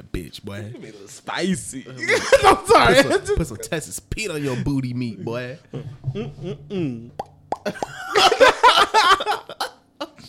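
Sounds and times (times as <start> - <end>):
speech: 0.3 - 8.4
laughter: 2.0 - 3.7, 7.7 - 9.8
person hiccuping: 5.8 - 7.2.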